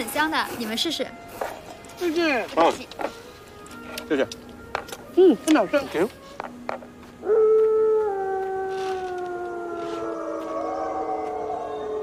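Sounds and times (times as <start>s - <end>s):
speech: 0.0s - 3.2s, 4.1s - 4.4s, 5.2s - 6.9s
lone wolf howling to call its pack: 7.2s - 12.0s.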